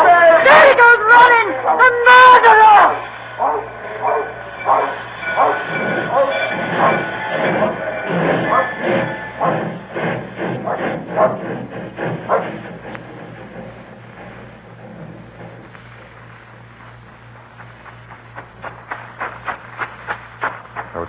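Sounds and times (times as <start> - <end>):
indistinct shouting voices: 0.0 - 4.2
train wheels clattering on rails between Dorbeath and Newton Stewart: 2.9 - 21.0.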